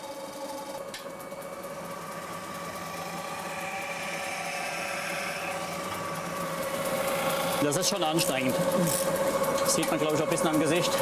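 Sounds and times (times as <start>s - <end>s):
metal spinning lathe in a mobile workshop whirring while forming zinc sheet: 0.0s - 10.9s
tool scraping turning zinc sheet: 2.4s - 10.0s
tool squealing on turning zinc sheet: 2.9s - 7.6s
speech: 7.6s - 10.9s.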